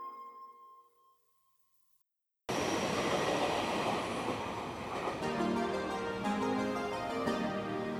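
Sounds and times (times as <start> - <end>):
rapid-service train passing through a station platform: 2.5 - 7.9.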